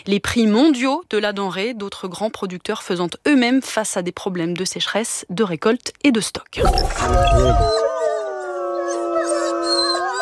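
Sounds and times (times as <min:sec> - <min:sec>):
speech: 0:00.0 - 0:08.2
wolves howling in a chorus: 0:07.7 - 0:10.2.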